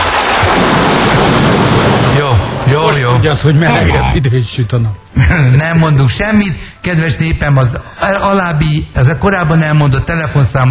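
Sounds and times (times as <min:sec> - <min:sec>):
lightning strike sound effect with thunder rumbling and crackling: 0:00.0 - 0:02.8
speech: 0:03.2 - 0:10.7.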